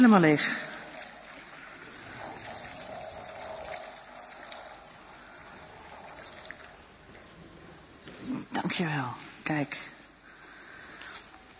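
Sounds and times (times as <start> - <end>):
speech: 0.0 - 0.7, 8.8 - 10.0
stream of water pouring from a height into a container: 0.0 - 8.0.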